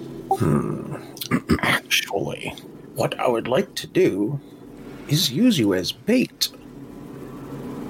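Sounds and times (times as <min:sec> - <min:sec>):
voice imitating a monster's roar with gravelly growling: 0:00.3 - 0:01.1
speech: 0:00.4 - 0:01.0, 0:02.5 - 0:06.6.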